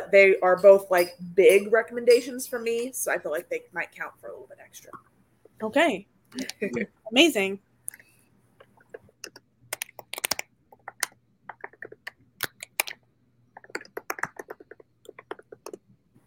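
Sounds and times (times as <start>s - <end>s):
faint steady hum: 0.0s - 16.2s
speech: 0.1s - 7.7s
typing on a computer keyboard: 8.6s - 15.9s.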